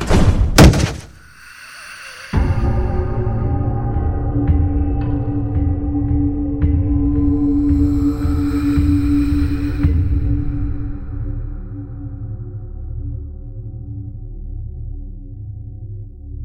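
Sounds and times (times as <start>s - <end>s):
heavy oak door slamming as a body collides with it: 0.0s - 1.2s
steady low droning tone: 1.2s - 15.6s.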